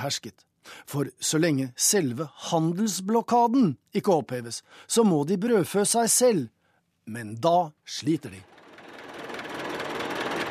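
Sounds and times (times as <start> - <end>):
speech: 0.0 - 8.6
old rusted Soviet-made tractor engine running in Cuba: 8.2 - 10.4.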